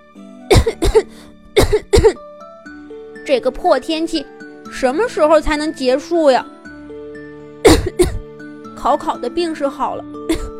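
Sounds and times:
harsh throaty coughs from someone ill in bad weather: 0:00.5 - 0:02.2, 0:07.6 - 0:08.3, 0:10.3 - 0:10.5
speech: 0:03.3 - 0:06.5, 0:08.8 - 0:10.4.

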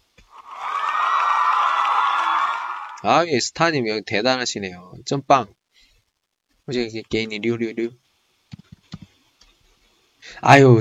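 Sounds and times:
applause: 0:00.3 - 0:03.1
crowd cheering and whooping: 0:00.3 - 0:03.1
speech: 0:03.0 - 0:05.6, 0:06.7 - 0:08.0, 0:10.4 - 0:10.7.

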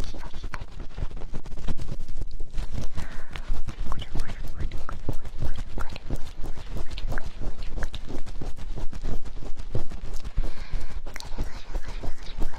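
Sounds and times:
constant low rumble: 0:00.0 - 0:12.5
very fast poking at the ears: 0:00.0 - 0:12.5.

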